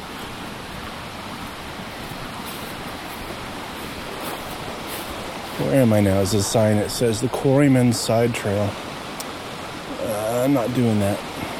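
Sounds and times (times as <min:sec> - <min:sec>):
flowing river water rushing: 0:00.0 - 0:11.5
speech: 0:05.6 - 0:08.9, 0:10.4 - 0:11.3.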